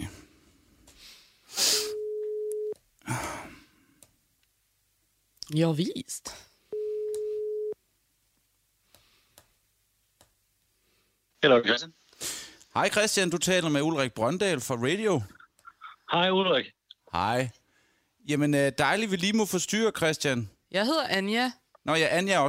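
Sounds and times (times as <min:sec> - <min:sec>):
telephone ringing tones while placing a call: 0:01.9 - 0:02.8, 0:06.7 - 0:07.8
speech: 0:05.5 - 0:06.4, 0:11.4 - 0:12.0, 0:12.8 - 0:15.4, 0:16.1 - 0:17.6, 0:18.2 - 0:22.4.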